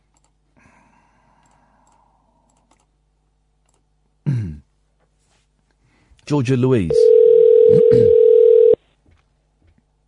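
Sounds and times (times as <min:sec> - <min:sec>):
speech: 0:06.3 - 0:07.1, 0:07.7 - 0:08.2
electronic ringing tone from an outgoing phone call: 0:06.9 - 0:08.8.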